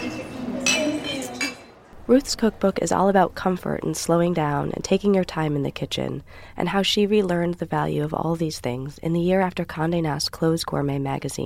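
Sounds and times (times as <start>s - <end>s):
glasses clinking together in a toast: 0.0s - 1.8s
speech: 2.1s - 11.4s.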